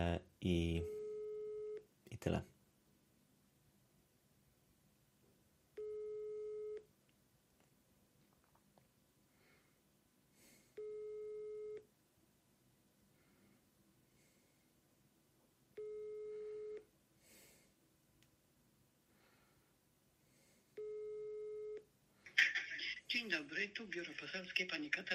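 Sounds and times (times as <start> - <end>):
speech: 0.0 - 1.0, 2.2 - 2.5, 23.7 - 25.1
faint hiss: 0.0 - 25.1
telephone ringback tone while a call is placed: 0.9 - 1.8, 5.8 - 6.9, 10.8 - 11.8, 15.8 - 16.8, 20.8 - 21.8.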